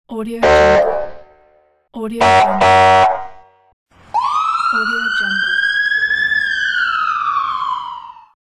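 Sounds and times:
police alarm: 0.4 - 1.2, 2.2 - 3.4, 4.1 - 8.4.

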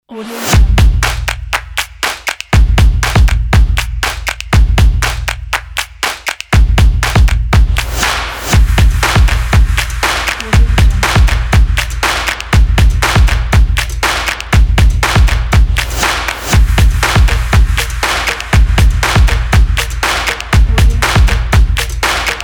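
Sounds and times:
upbeat fashion sport music with stomps: 0.5 - 22.4.

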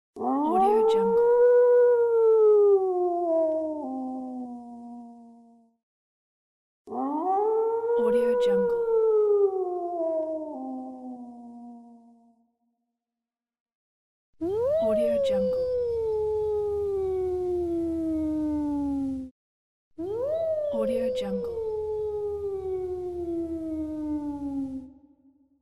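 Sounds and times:
wolf howling: 0.2 - 5.4, 6.9 - 12.2, 14.4 - 19.3, 20.0 - 25.0.

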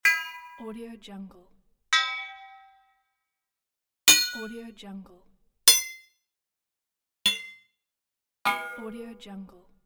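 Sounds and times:
metal pipe: 0.0 - 0.8, 2.0 - 2.8, 4.1 - 4.6, 5.7 - 6.0, 7.3 - 7.6, 8.5 - 9.0.

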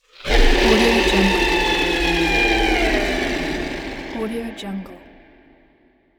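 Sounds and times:
demonic scream: 0.0 - 5.4.

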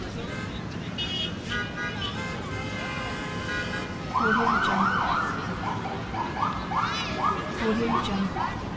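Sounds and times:
city car horns: 0.2 - 4.1
police siren in a city: 4.1 - 8.7.

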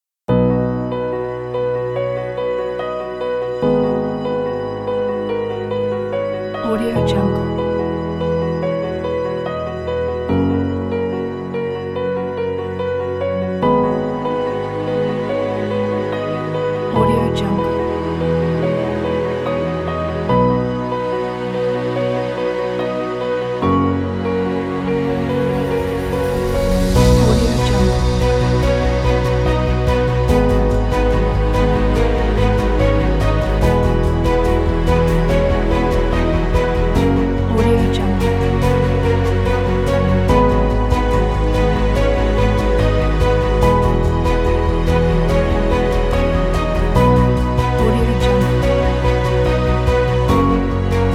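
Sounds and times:
inspiring beautiful piano music: 0.3 - 51.1.

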